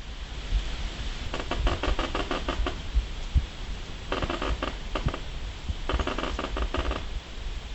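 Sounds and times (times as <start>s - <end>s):
gusting wind: 0.0s - 7.7s
tree creaking in gusting autumn wind: 1.1s - 3.0s, 3.9s - 7.3s.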